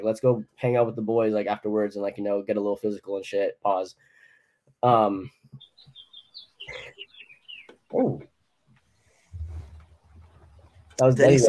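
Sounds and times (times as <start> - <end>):
speech: 0.0 - 4.1, 4.8 - 6.0, 7.9 - 8.3, 11.0 - 11.4
birds chirping in the background: 3.9 - 11.4.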